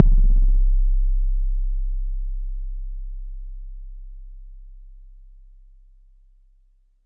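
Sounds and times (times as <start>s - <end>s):
bass drum: 0.0s - 5.2s.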